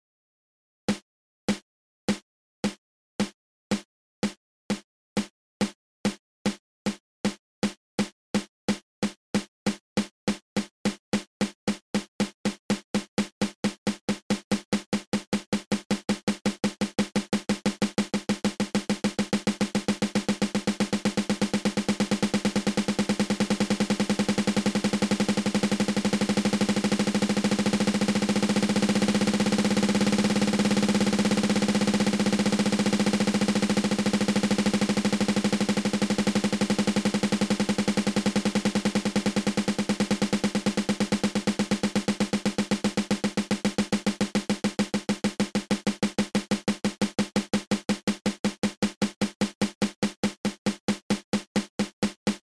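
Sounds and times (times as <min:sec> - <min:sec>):
snare drum single stroke roll: 0:00.9 - 0:52.4.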